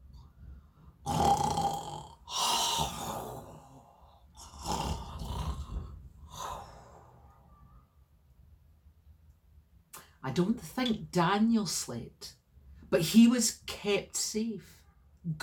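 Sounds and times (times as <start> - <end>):
voice imitating deep rumbling snoring of lions: 1.0 - 7.1
speech: 10.3 - 15.4.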